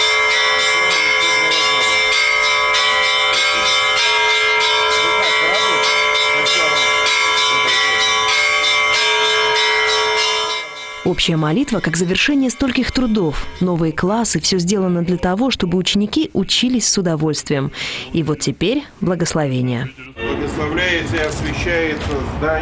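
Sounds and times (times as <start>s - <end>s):
bells ringing in a school courtyard to announce an important guest: 0.0s - 15.2s
speech: 11.1s - 22.6s.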